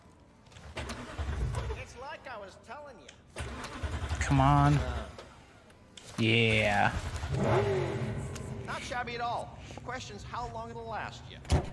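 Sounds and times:
car engine starting and revving: 0.8 - 1.8, 3.4 - 5.4, 7.0 - 9.0
speech: 2.3 - 5.1, 6.2 - 8.1, 8.7 - 11.7.

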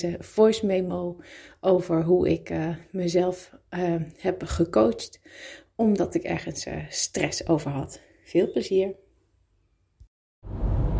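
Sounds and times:
speech: 0.0 - 9.0
low hum: 10.4 - 10.9.

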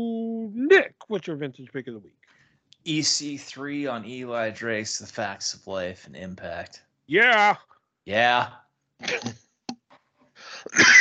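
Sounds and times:
speech: 0.7 - 9.4, 10.6 - 10.9
person coughing harshly: 9.0 - 9.3, 10.5 - 10.9
catch of breath: 10.4 - 10.7.

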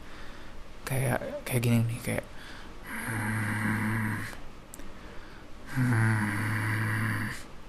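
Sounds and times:
speech: 0.9 - 3.3, 5.8 - 6.4
voice imitating an angry human growl: 2.9 - 4.4, 5.7 - 7.4.

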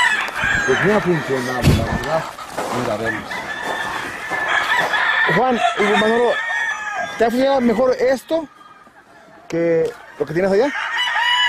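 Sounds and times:
rooster crowing: 0.0 - 2.3, 2.9 - 9.0, 10.1 - 11.4
clucking in a poultry yard: 0.0 - 11.4
speech: 0.7 - 3.5, 5.3 - 6.5, 7.2 - 8.6, 9.5 - 10.8
busy rustle in a poultry yard: 1.2 - 5.1.

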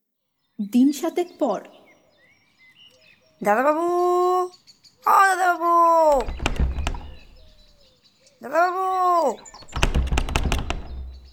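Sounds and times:
speech: 0.6 - 1.8, 3.4 - 6.4, 8.4 - 9.6
banging on a house door: 6.1 - 7.7, 9.4 - 11.3.

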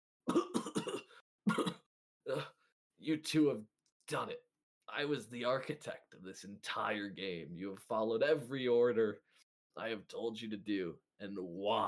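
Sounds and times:
person coughing roughly while acting a stabbed bleeding character: 0.3 - 2.6
speech: 2.3 - 11.8.

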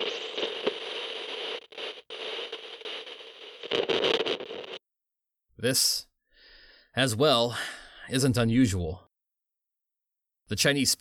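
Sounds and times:
harsh radio static hissing and crackling: 0.0 - 4.8
speech: 5.6 - 6.1, 7.0 - 9.1, 10.5 - 10.9.

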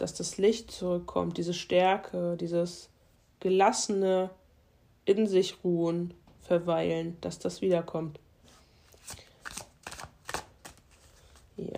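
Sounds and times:
speech: 0.0 - 4.4, 5.0 - 8.2
tarot cards being shuffled by hand with several cards flying out: 8.5 - 11.6.

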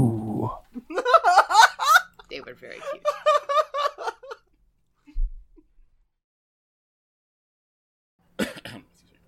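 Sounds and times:
laughter: 0.8 - 4.5
person coughing: 8.4 - 9.0.

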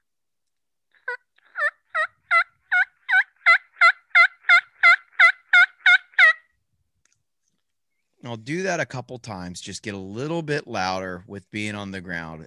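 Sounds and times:
hunter imitating wild turkey yelp calls: 1.0 - 6.5
speech: 8.3 - 12.4.

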